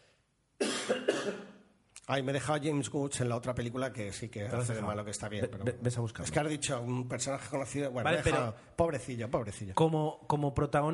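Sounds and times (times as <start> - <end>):
person coughing: 0.6 - 1.6
speech: 0.9 - 1.5, 2.1 - 10.9.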